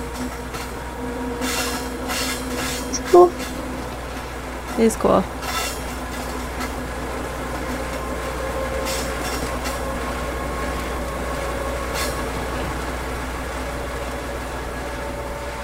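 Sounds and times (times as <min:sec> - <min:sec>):
train passing on railroad track next to a library: 0:00.0 - 0:15.6
speech: 0:03.1 - 0:03.5, 0:04.8 - 0:05.4.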